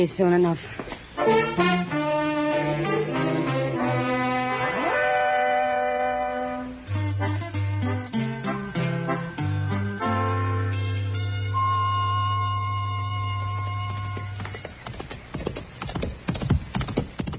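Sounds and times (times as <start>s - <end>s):
speech: 0.0s - 1.8s
sustained musical chord: 1.2s - 14.4s
ridden horse hooves clip-clopping at a walk: 13.1s - 17.3s.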